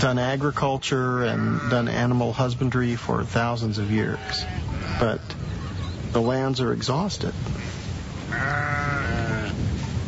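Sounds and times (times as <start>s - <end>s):
speech: 0.0s - 5.4s, 6.1s - 7.7s
sheep or goat bleating on overgrazed farmland: 1.2s - 2.1s, 4.1s - 5.4s, 8.3s - 9.6s.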